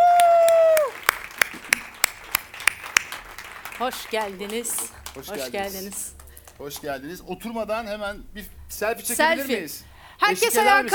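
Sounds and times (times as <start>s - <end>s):
audience applause in rhythmic claps: 0.0s - 6.8s
speech: 3.8s - 10.9s.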